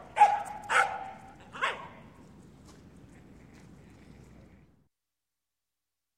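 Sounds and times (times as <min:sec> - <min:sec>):
terrier barking: 0:00.0 - 0:02.0.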